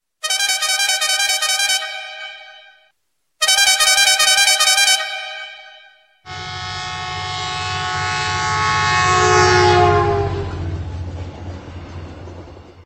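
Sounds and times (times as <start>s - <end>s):
air train horn: 0.2s - 10.7s.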